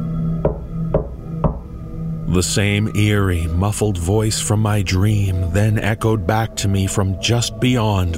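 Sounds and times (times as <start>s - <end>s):
speech: 0.4s - 0.7s, 2.3s - 8.1s
heavy knocks on a door: 0.4s - 1.6s.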